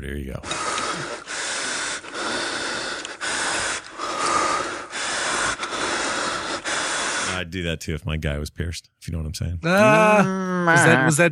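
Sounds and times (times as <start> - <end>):
speech: 0.0 - 0.8, 7.4 - 11.3
man breathing hard: 0.5 - 7.4.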